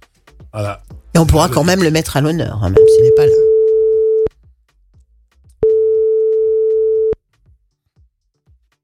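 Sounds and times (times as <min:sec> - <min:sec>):
speech: 0:00.5 - 0:03.5
ringback tone of an unanswered telephone call: 0:02.8 - 0:04.3, 0:05.6 - 0:07.2.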